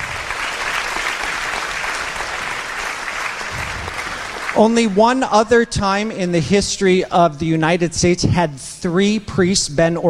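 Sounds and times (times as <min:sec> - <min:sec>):
audience crowd clapping: 0:00.0 - 0:05.3
speech: 0:04.6 - 0:10.0.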